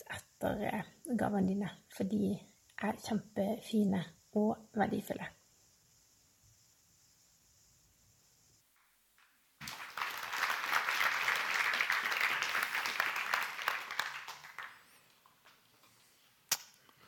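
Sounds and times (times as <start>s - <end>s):
speech: 0.1s - 5.4s
audience applause: 9.6s - 15.1s.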